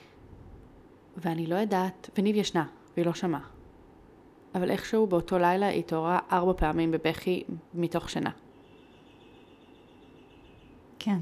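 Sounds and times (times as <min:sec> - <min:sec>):
low hiss: 0:00.0 - 0:11.1
speech: 0:01.2 - 0:03.6, 0:04.5 - 0:08.4
faint birds chirping outside: 0:08.4 - 0:11.0.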